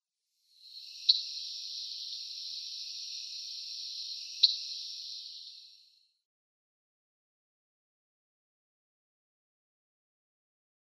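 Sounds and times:
Common Yellowthroat calls: 0.7s - 5.9s.

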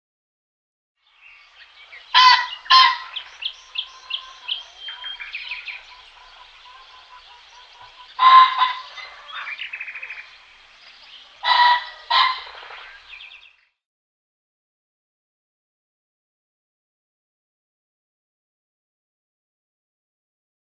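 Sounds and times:
male Ring-necked Pheasant display: 1.0s - 13.8s.

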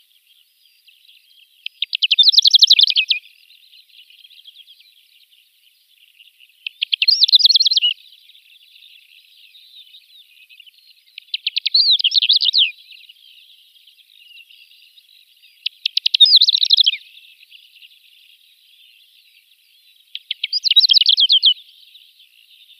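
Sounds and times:
greater short-toed lark singing: 0.0s - 22.7s.

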